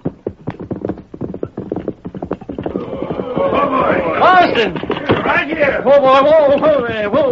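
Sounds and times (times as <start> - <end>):
horses trotting with hooves clip-clopping: 0.0 - 7.2
horse whinnying: 2.4 - 5.9
speech: 3.4 - 7.2.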